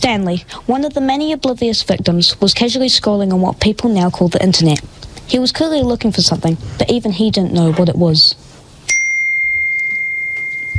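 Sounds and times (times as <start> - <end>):
speech: 0.1 - 8.4
phone notification chime from an app alert: 8.9 - 10.7.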